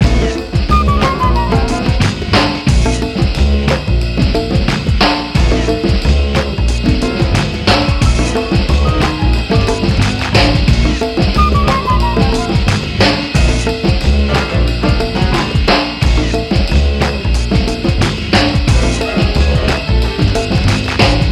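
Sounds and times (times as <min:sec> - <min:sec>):
acid jazz combo playing: 0:00.0 - 0:21.3.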